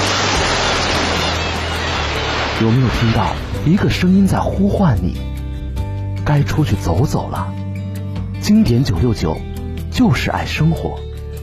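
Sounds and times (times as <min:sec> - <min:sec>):
sea waves: 0:00.0 - 0:04.6
speech: 0:02.6 - 0:05.4, 0:06.2 - 0:07.6, 0:08.4 - 0:11.1.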